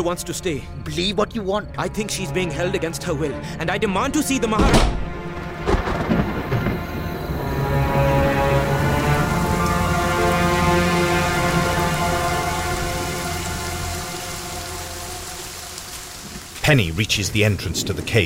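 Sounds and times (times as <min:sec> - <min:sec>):
speech: 0:00.0 - 0:05.0, 0:16.7 - 0:18.2
thunder echoing in a vast empty stone cave chamber: 0:04.4 - 0:18.2
steady rain: 0:04.5 - 0:18.2.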